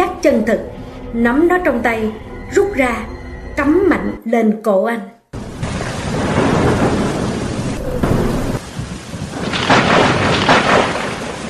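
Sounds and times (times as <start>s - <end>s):
speech: 0.2s - 5.2s
heavy rain: 5.4s - 11.4s
thunder rumbling: 5.4s - 11.4s.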